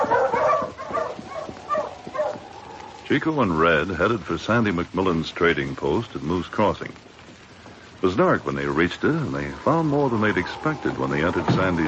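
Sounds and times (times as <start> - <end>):
husky sled dog on a trail barking and yipping: 0.0 - 3.0
speech: 3.1 - 7.2, 8.0 - 11.8.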